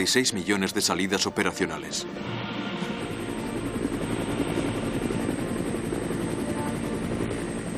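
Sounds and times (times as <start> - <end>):
speech: 0.0 - 2.9
American Vietnam War military helicopter engine whine: 0.7 - 7.7
American Vietnam War military helicopter rotor thudding: 2.2 - 7.7.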